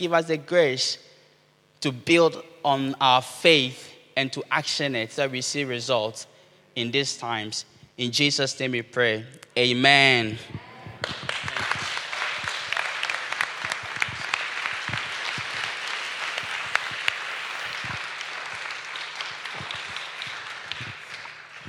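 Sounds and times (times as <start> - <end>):
speech: 0.0 - 1.1, 1.8 - 11.2
audience applause: 11.0 - 21.6.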